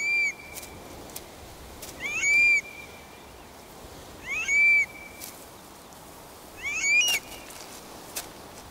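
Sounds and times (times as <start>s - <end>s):
Eurasian stone-curlew giving shrill wailing whistled calls: 0.0s - 0.6s, 2.0s - 3.0s, 4.2s - 5.2s, 6.6s - 7.6s.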